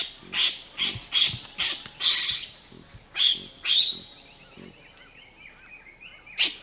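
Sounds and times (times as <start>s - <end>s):
baboon screeching in Africa: 0.0s - 4.8s.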